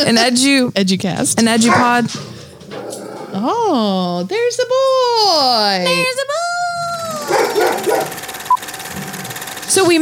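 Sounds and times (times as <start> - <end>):
speech: 0.0 - 2.4, 3.4 - 6.4, 9.7 - 10.0
dogs barking and whimpering: 1.4 - 3.8, 6.8 - 8.3.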